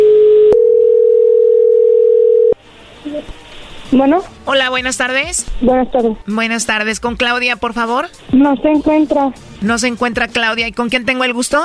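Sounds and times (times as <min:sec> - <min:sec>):
telephone ringback tone: 0:00.0 - 0:02.6
speech: 0:04.0 - 0:11.6.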